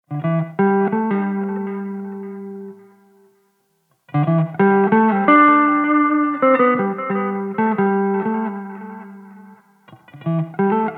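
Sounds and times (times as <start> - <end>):
jazz riffs and licks on an electric guitar: 0.1 - 3.3, 4.1 - 10.9.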